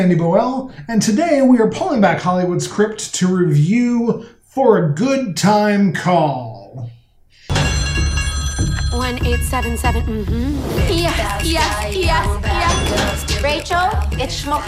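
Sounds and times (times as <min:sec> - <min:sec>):
speech: 0:00.0 - 0:07.7, 0:08.9 - 0:14.6
telephone bell ringing: 0:07.5 - 0:10.1.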